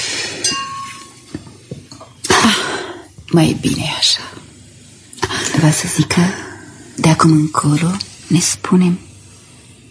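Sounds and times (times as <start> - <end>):
wine glasses clinking during a brotherhood toast: 0.4 - 2.1
speech: 3.3 - 4.4, 5.6 - 9.1.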